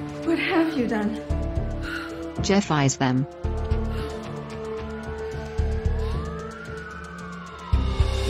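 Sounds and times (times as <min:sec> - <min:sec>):
speech: 0:00.2 - 0:01.3, 0:02.4 - 0:03.5
police car siren wailing at night: 0:03.3 - 0:08.2.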